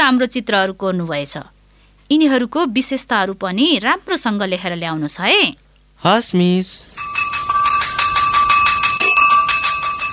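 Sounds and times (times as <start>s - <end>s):
speech: 0.1s - 7.5s
school bell ringing at the end of a class period: 7.0s - 10.1s.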